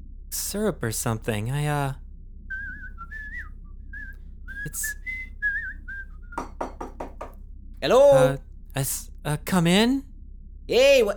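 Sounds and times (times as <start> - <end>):
speech: 0.3 - 2.0, 4.7 - 5.0, 7.8 - 10.1, 10.7 - 11.1
person whistling a melody while coming down the hall: 2.5 - 6.8
sharp clinking or knocking: 6.4 - 7.4.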